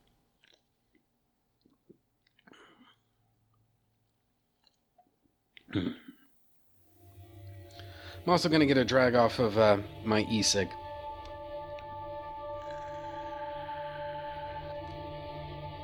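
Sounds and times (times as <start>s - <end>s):
lip smacks: 0.0s - 5.7s, 11.2s - 13.6s
person sipping soda: 0.0s - 6.2s, 11.2s - 15.2s
speech: 5.7s - 6.1s, 8.2s - 10.8s.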